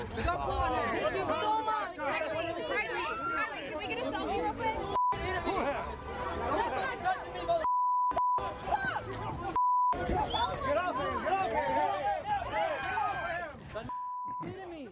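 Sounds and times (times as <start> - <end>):
noisy crowd chatter and overlapping voices: 0.0 - 14.8
loud steady electronic beeps: 4.9 - 5.3, 7.6 - 8.4, 9.5 - 10.0.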